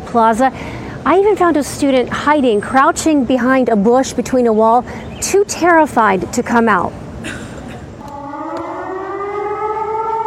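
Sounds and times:
speech: 0:00.1 - 0:07.4
campus emergency siren blaring outdoors: 0:08.0 - 0:10.2.

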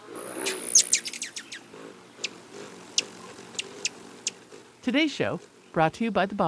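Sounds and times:
rufous hummingbird high chirps: 0:00.0 - 0:04.4
speech: 0:04.9 - 0:06.4.

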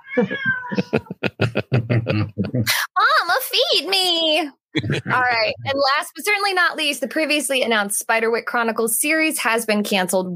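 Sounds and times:
domestic cat meowing: 0:00.0 - 0:01.0
laughter: 0:00.0 - 0:02.8, 0:04.8 - 0:05.8
speech: 0:00.2 - 0:10.3.

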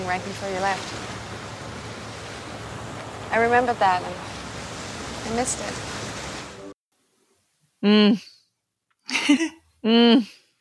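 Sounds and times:
ocean waves: 0:00.0 - 0:06.8
speech: 0:00.1 - 0:01.3, 0:03.3 - 0:04.3, 0:05.2 - 0:06.0, 0:07.8 - 0:08.3, 0:09.1 - 0:10.4
laughter: 0:09.1 - 0:09.6.

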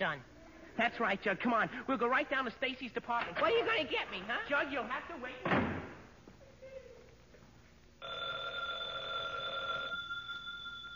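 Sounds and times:
speech: 0:00.0 - 0:05.7
telephone bell ringing: 0:08.0 - 0:10.9.

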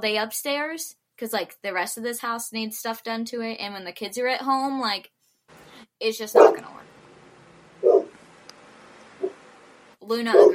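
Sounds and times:
speech: 0:00.0 - 0:05.2, 0:06.0 - 0:06.9, 0:10.1 - 0:10.5
dog barking indoors: 0:06.4 - 0:06.7, 0:07.8 - 0:08.2, 0:10.3 - 0:10.5.

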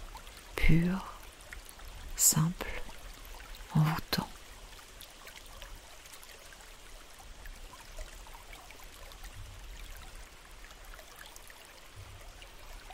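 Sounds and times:
flowing water from a clear cool stream: 0:00.0 - 0:12.9
speech: 0:00.7 - 0:01.1, 0:02.2 - 0:02.8, 0:03.8 - 0:04.4.

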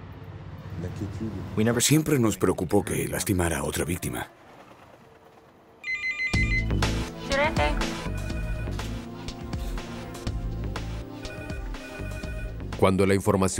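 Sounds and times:
speech: 0:00.8 - 0:04.4, 0:12.8 - 0:13.5
telephones ringing at a police station: 0:05.8 - 0:09.0, 0:11.0 - 0:12.7.

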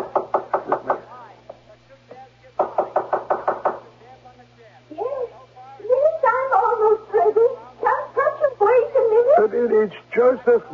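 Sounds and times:
rapid knocking on a wooden bedroom door: 0:00.0 - 0:01.0, 0:02.6 - 0:03.8
faint voices murmuring: 0:00.4 - 0:10.7.

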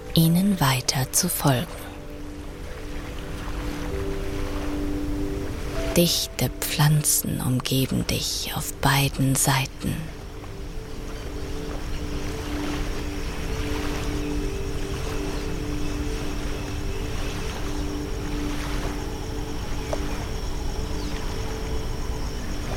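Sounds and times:
ocean water splashes: 0:00.0 - 0:22.7
ocean waves rushing: 0:00.0 - 0:22.7
speech: 0:00.2 - 0:01.9, 0:06.0 - 0:10.2.

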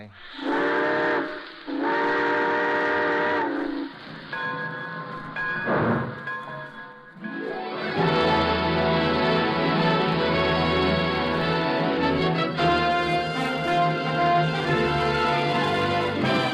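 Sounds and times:
steam train hissing: 0:00.0 - 0:06.6, 0:07.2 - 0:16.5
steam train whistle blasts: 0:00.4 - 0:03.9, 0:07.9 - 0:16.5.

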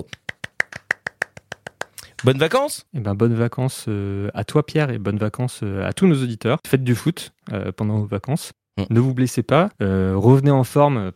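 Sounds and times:
speech: 0:00.0 - 0:00.2, 0:02.2 - 0:11.1
hand clapping: 0:00.0 - 0:02.6.

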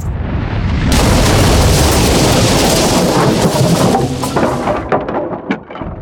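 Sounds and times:
giant war cannon shot on a battlefield: 0:00.0 - 0:04.8.

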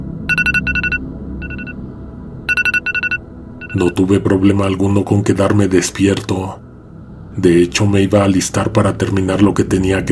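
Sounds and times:
low hum: 0:00.0 - 0:10.0
phone alarm beeping: 0:00.3 - 0:01.8, 0:02.5 - 0:04.0
speech: 0:03.7 - 0:06.6, 0:07.4 - 0:10.0.

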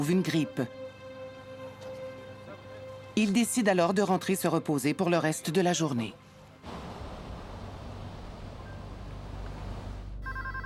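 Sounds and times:
speech: 0:00.0 - 0:00.8, 0:03.2 - 0:06.2
steady rumbling wind-like noise: 0:06.6 - 0:10.2
electronic telephone ring: 0:10.2 - 0:10.6.

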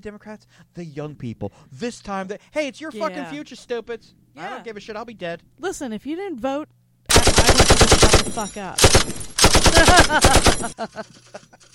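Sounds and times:
speech: 0:00.0 - 0:07.7, 0:08.3 - 0:11.6
automatic gunfire sound effect: 0:07.1 - 0:10.7
laughter: 0:09.6 - 0:11.7.

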